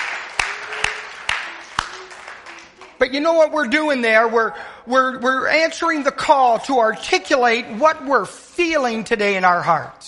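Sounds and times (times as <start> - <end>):
church congregation clapping: 0.0 - 3.2
speech: 3.0 - 10.0.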